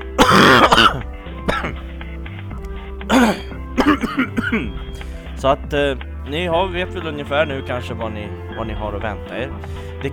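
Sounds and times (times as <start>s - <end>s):
person coughing and clearing their throat: 0.2s - 1.8s, 3.1s - 4.8s
speech: 5.4s - 10.1s.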